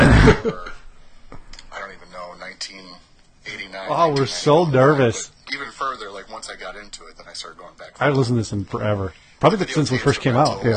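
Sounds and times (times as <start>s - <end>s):
loud cough: 0.0s - 0.8s
speech: 0.2s - 0.7s, 2.7s - 10.7s.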